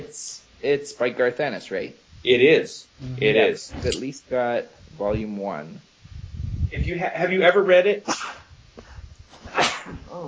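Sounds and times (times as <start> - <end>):
speech: 0.0 - 5.9, 6.7 - 8.4, 9.8 - 10.2
man sneezing: 8.0 - 8.5, 9.4 - 10.2.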